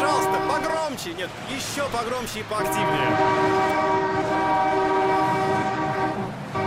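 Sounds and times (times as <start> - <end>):
loud sustained horn blaring: 0.0 - 0.9, 2.6 - 6.6
speech: 1.0 - 4.9.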